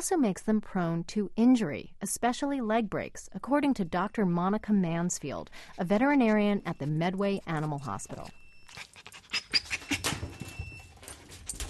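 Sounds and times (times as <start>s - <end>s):
speech: 0.0s - 9.2s
small dog panting during blood draw at an animal hospital: 8.7s - 10.0s.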